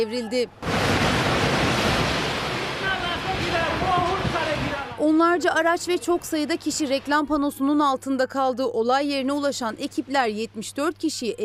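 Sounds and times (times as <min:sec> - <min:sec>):
speech: 0:00.0 - 0:02.0, 0:03.4 - 0:11.4
heavy rain pouring down: 0:00.6 - 0:05.0
storm wind roaring: 0:00.6 - 0:05.1.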